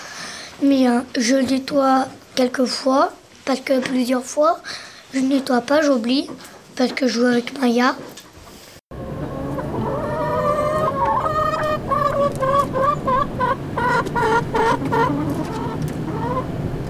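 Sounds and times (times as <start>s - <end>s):
speech: 0.6s - 8.1s
newly arrived hens clucking and squawking at a school in Bangon: 8.9s - 16.8s.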